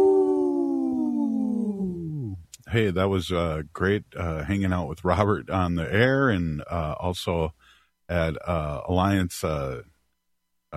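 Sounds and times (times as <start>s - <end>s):
wolf howl: 0.0s - 2.4s
speech: 2.7s - 9.9s.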